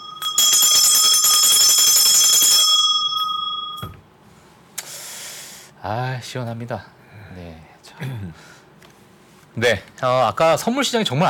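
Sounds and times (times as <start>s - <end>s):
electric stock exchange opening bell ringing: 0.0s - 4.0s
speech: 5.9s - 8.5s, 9.6s - 11.2s.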